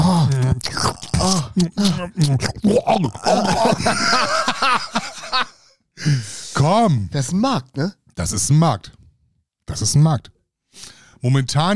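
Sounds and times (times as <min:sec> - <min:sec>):
person imitating wet lip smacking and chewing with their mouth: 0:00.0 - 0:03.5
low groaning voiced tones: 0:00.0 - 0:03.8
speech: 0:01.6 - 0:09.0, 0:09.7 - 0:11.7
laughter: 0:03.3 - 0:05.6.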